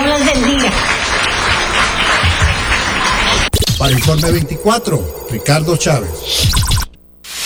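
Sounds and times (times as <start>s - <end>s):
applause from a gathered crowd: 0.0s - 3.5s
speech: 3.9s - 6.7s.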